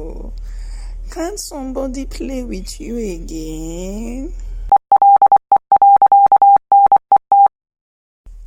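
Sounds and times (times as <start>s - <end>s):
speech: 1.2s - 4.4s
phone ringing with an incoming call: 4.9s - 7.5s.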